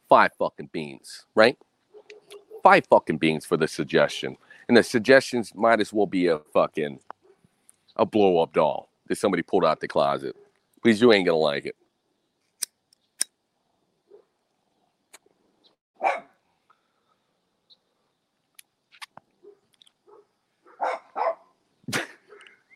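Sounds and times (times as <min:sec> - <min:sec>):
speech: 0:00.1 - 0:01.7, 0:02.6 - 0:07.1, 0:08.0 - 0:11.8
dog barking frantically: 0:01.9 - 0:02.7, 0:16.0 - 0:16.4, 0:19.4 - 0:21.5.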